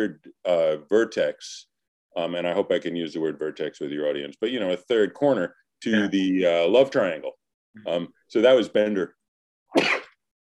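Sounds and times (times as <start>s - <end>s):
speech: 0.0s - 10.0s
sneeze caused by spring hay fever: 9.7s - 10.2s.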